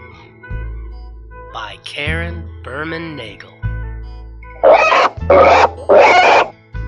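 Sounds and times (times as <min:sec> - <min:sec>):
speech: 0:01.5 - 0:03.6, 0:05.3 - 0:05.8
pig oinking on a farm: 0:04.6 - 0:06.5.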